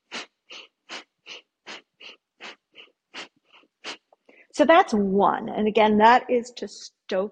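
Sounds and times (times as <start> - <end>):
bellows breath, forceful breathing in and out through the nose: 0.0 - 4.5
speech: 4.6 - 7.3.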